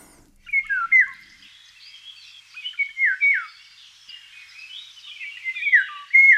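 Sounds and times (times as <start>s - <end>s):
other birds chirping: 0.0s - 2.8s
Eurasian golden oriole song: 0.0s - 3.6s, 4.5s - 6.3s.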